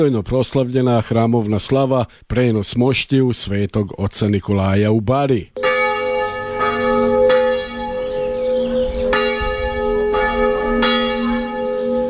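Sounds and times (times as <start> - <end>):
speech: 0.0 - 5.6
Serbian Orthodox church bell ringing to call the faithful to a feast: 5.6 - 12.0.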